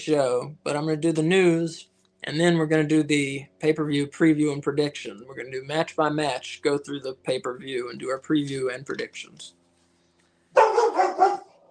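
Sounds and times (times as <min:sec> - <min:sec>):
speech: 0:00.0 - 0:09.6
dog barking: 0:10.6 - 0:11.6.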